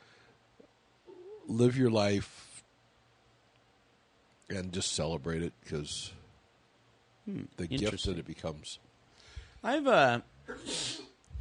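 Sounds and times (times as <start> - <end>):
speech: 1.5 - 2.4, 4.5 - 6.2, 7.2 - 8.9, 9.6 - 10.9
sneeze: 10.5 - 11.2.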